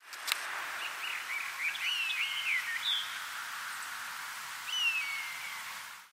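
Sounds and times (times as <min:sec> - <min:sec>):
buzzard bird song: 0:00.7 - 0:03.9, 0:04.6 - 0:05.8.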